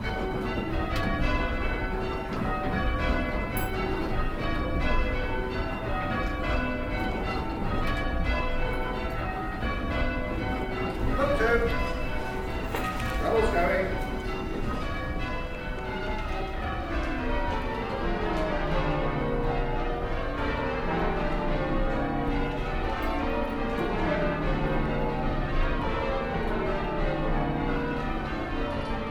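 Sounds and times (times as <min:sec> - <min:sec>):
church bells ringing rounds and call changes: 0:00.0 - 0:29.0.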